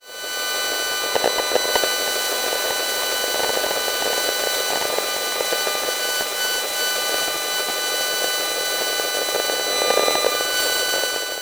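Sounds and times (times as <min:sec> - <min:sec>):
electromagnetic signal noise from a mobile phone relay antenna: 0:00.0 - 0:11.3.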